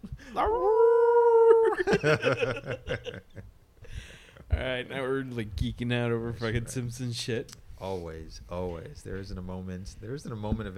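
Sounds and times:
speech: 0:00.2 - 0:00.8, 0:01.8 - 0:03.6, 0:04.5 - 0:10.7
wolf howling: 0:00.4 - 0:01.8
laughter: 0:01.5 - 0:03.4.

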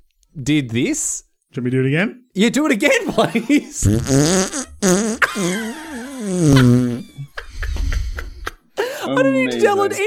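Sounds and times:
speech: 0:00.4 - 0:07.1, 0:09.1 - 0:10.0
raspberry blown with a person's mouth on their forearm imitating a fart: 0:03.8 - 0:05.5, 0:06.2 - 0:07.1.

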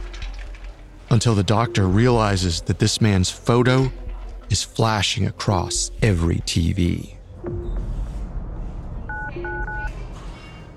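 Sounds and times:
speech: 0:01.1 - 0:07.6
telephone keypad dual-tone dialing beeps: 0:09.1 - 0:09.9.

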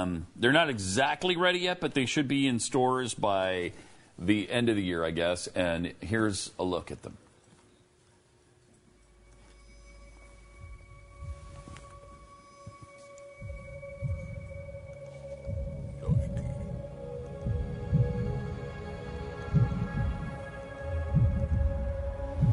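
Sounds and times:
speech: 0:00.0 - 0:07.2
faint constant electronic hum: 0:00.0 - 0:22.5
heartbeat from shoes with a built-in heartbeat thumping: 0:10.6 - 0:22.5.

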